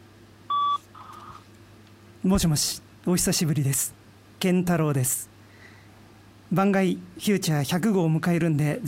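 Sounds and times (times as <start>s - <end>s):
answering machine beep: 0.5s - 1.4s
speech: 2.2s - 5.3s, 6.5s - 8.8s.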